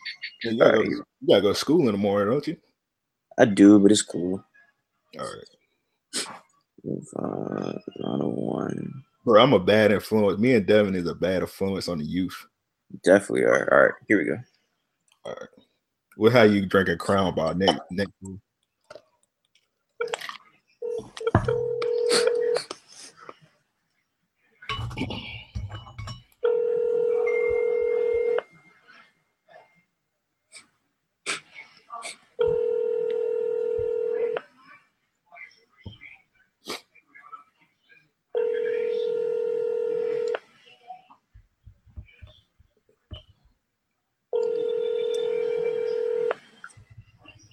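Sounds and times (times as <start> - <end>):
speech: 0.5 - 2.7, 3.4 - 4.5, 5.1 - 5.6, 6.8 - 14.5, 15.2 - 18.4, 25.0 - 25.3
outgoing phone call ringback tones, unanswered: 20.8 - 22.7, 26.4 - 28.5, 32.4 - 34.4, 38.4 - 40.4, 44.4 - 46.4
phone dialing taps and beeps: 44.4 - 46.3.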